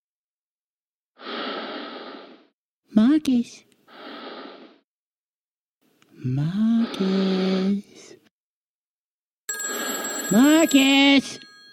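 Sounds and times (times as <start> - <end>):
speech: 2.9 - 3.7, 6.2 - 8.2, 10.3 - 11.4
telephone bell ringing: 9.5 - 11.7.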